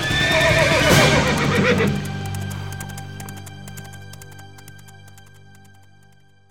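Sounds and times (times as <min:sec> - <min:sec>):
horse whinnying: 0:00.0 - 0:02.8
hoofbeats of a horse moving off: 0:00.0 - 0:06.2.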